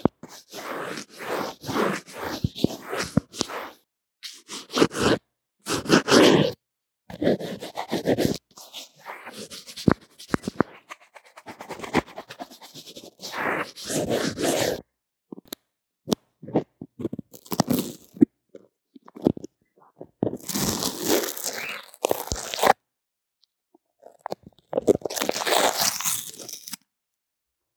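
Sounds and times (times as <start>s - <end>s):
crunchy scratching from drawing and makeup on a low-quality earphone mic: 0.0s - 14.8s, 16.4s - 18.2s, 20.2s - 22.8s, 24.3s - 26.8s.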